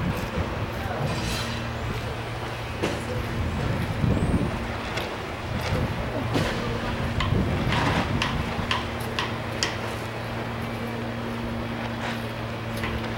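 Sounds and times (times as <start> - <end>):
low engine-like hum: 0.0 - 13.1
knocks, rattles and clicks: 5.6 - 9.9.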